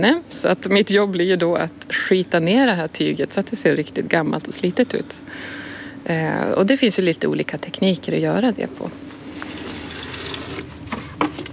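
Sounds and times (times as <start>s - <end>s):
speech: 0.0s - 9.0s
thin heavily pigmented paint stirred in large buckets at a sink: 9.0s - 11.5s.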